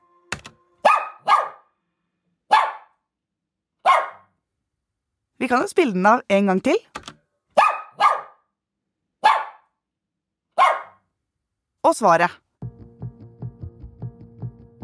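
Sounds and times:
dog barking playfully: 0:00.8 - 0:01.6, 0:02.5 - 0:02.9, 0:03.8 - 0:04.3, 0:07.6 - 0:08.4, 0:09.2 - 0:09.6, 0:10.6 - 0:11.0
speech: 0:05.4 - 0:07.1, 0:11.9 - 0:12.4.

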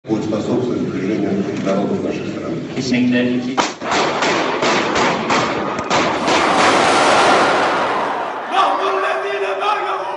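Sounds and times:
speech: 0:00.3 - 0:03.9
rapid irregular loud gunshots: 0:03.8 - 0:08.4
people shouting and screaming: 0:06.2 - 0:10.1.

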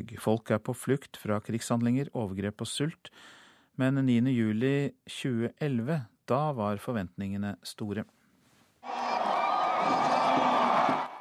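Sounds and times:
speech: 0:00.0 - 0:08.2
deafening crowd cheering at an independence celebration: 0:08.8 - 0:11.2.

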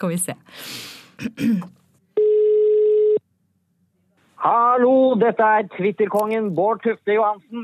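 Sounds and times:
speech: 0:00.0 - 0:01.8, 0:04.4 - 0:07.6
telephone tone of an outgoing call: 0:02.2 - 0:03.2.

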